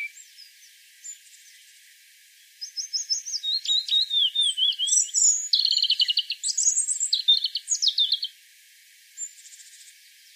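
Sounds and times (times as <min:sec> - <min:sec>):
European robin song: 0:00.0 - 0:01.7, 0:02.4 - 0:08.4.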